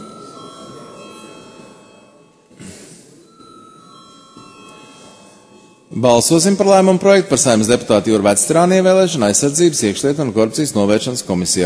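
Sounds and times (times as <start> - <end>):
electric bell ringing to call a vote in the Latvian parliament: 0.0 - 2.4, 3.3 - 6.5
hushed murmuring voices in the Latvian parliament: 0.0 - 5.9
speech: 6.0 - 11.6.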